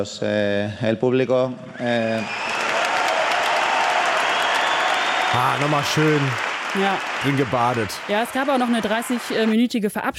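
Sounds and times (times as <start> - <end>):
speech: 0.0 - 2.6, 5.3 - 10.1
huge tennis crowd applauding and cheering: 1.8 - 9.7.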